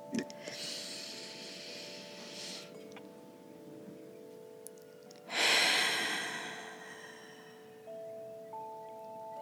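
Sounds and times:
faint sustained musical tones: 0.0s - 9.4s
deep breath in and out: 0.4s - 2.8s, 5.3s - 8.0s.

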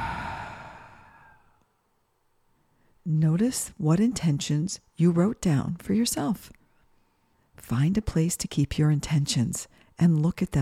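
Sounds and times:
deep breath out during a guided breathing exercise: 0.0s - 1.6s
speech: 3.1s - 6.6s, 7.6s - 10.5s.

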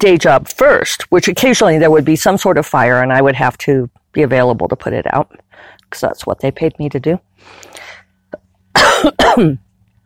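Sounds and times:
speech: 0.0s - 9.6s
person coughing in the morning: 8.8s - 9.6s.

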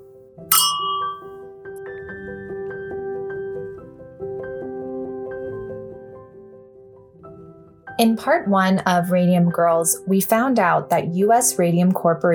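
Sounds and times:
glasses clinking in a toast: 0.5s - 1.3s
soft chiming bell-like notes: 0.5s - 1.3s
speech: 8.0s - 12.3s.

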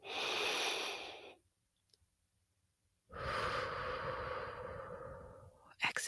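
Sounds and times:
deep breath in: 0.0s - 1.4s, 3.1s - 5.6s.

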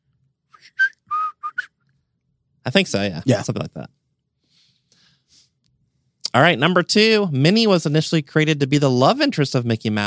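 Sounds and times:
person whistling the opening melody of a song: 0.5s - 1.7s
speech: 2.6s - 4.0s, 6.3s - 10.0s.

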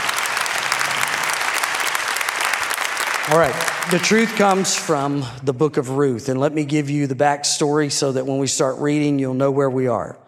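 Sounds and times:
audience applauding: 0.0s - 5.4s
speech: 3.3s - 10.2s.

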